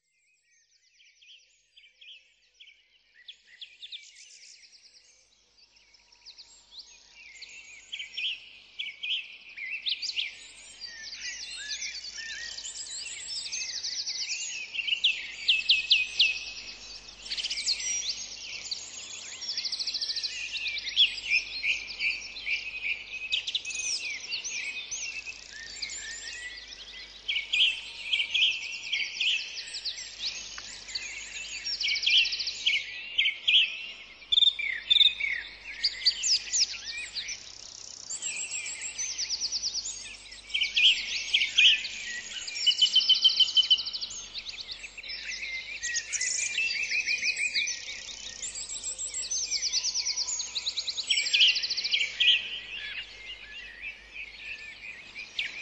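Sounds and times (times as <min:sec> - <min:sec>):
Irish birdsong: 0:00.0 - 0:55.6.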